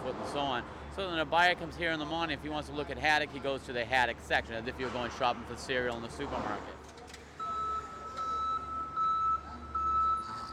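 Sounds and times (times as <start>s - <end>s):
speech: 0.1s - 6.9s
forklift reversing alarm beeping in warehouse behind a fish auction room: 7.4s - 10.5s.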